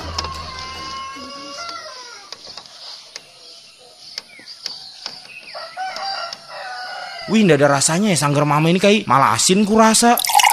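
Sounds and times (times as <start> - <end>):
rooster crowing: 0.4 - 2.3, 5.5 - 7.5
speech: 7.3 - 10.4.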